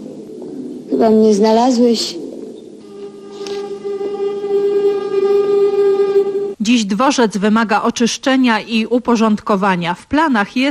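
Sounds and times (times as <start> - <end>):
speech: 0.9 - 2.2, 6.7 - 10.6
train passing through a railway station: 2.8 - 6.6.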